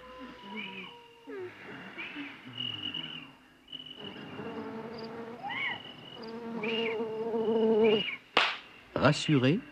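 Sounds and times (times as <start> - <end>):
flies and mosquitoes buzzing: 2.5 - 8.2.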